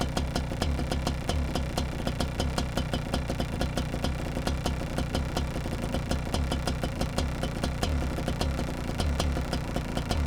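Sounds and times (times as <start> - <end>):
kart engine idling: 0.0 - 10.2.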